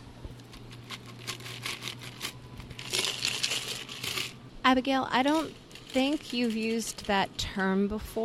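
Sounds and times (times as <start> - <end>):
ice clinking and rattling in a cocktail shaker: 0.6 - 4.4, 5.2 - 7.5
speech: 4.7 - 8.2.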